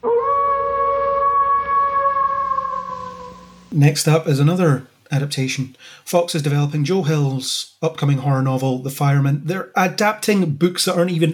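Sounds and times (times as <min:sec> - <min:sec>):
person imitating a wolf howl: 0:00.0 - 0:03.6
speech: 0:03.7 - 0:11.3.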